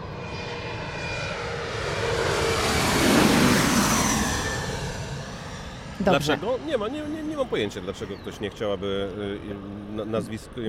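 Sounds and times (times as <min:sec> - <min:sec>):
airplane flying low overhead: 0:00.0 - 0:10.6
speech: 0:06.0 - 0:10.6.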